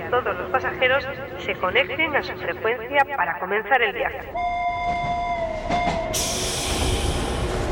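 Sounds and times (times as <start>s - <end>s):
continuous rumble of a tram pulling away: 0.0s - 7.6s
speech: 0.1s - 5.4s
tram wheel squeal on rails: 4.7s - 7.6s
loud hiss of air: 6.2s - 7.6s.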